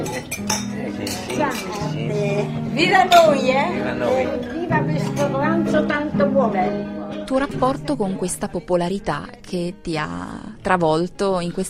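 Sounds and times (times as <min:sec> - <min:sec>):
glasses clinking in a toast among friends: 0:00.0 - 0:02.0
speech: 0:00.3 - 0:11.6.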